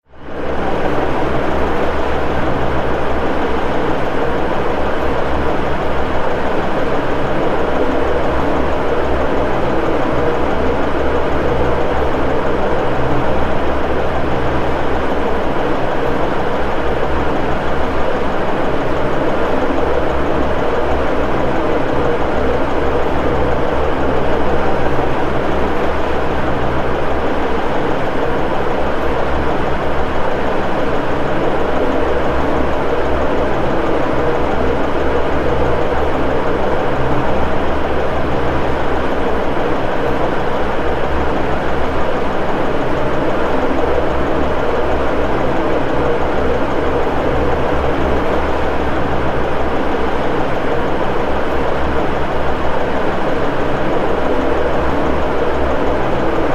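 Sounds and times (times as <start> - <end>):
engine room background noise: 0.0 - 56.5.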